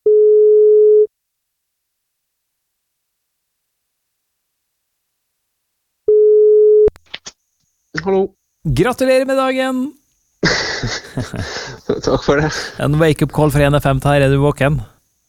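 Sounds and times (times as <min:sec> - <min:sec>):
phone line ringback tone beeps: 0:00.0 - 0:01.1, 0:06.1 - 0:06.9
speech: 0:08.0 - 0:14.9
laughter: 0:10.4 - 0:13.0.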